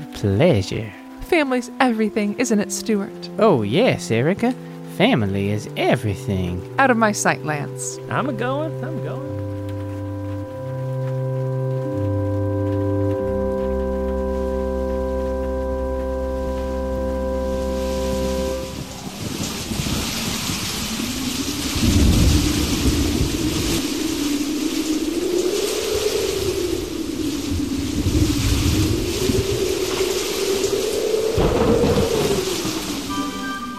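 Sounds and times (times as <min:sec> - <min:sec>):
steady heavy rain pouring: 0:00.0 - 0:33.7
speech: 0:00.2 - 0:09.4
deep thunder rumbles: 0:05.0 - 0:33.7
low wavering hum: 0:09.2 - 0:33.7.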